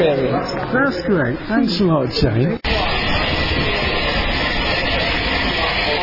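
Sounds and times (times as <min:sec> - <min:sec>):
speech: 0:00.0 - 0:02.8
low mechanical drone: 0:02.6 - 0:06.0
train arriving, rolling by: 0:02.7 - 0:06.0.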